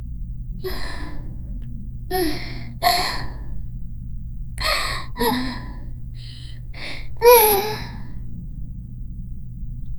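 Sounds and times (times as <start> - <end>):
heavy sighs: 0.6 - 1.5, 2.1 - 3.6, 4.6 - 8.2.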